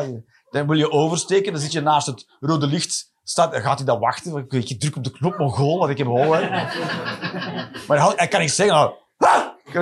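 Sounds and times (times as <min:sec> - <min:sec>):
speech: 0:00.0 - 0:09.7
laughter: 0:05.2 - 0:08.2
man giving a loud voiced bark imitating a dog: 0:09.2 - 0:09.7.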